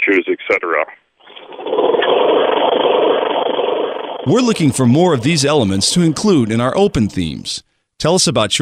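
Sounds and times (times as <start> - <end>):
speech: 0.1 - 1.0, 4.2 - 8.5
lawn mower small engine running in Michigan: 1.3 - 7.4.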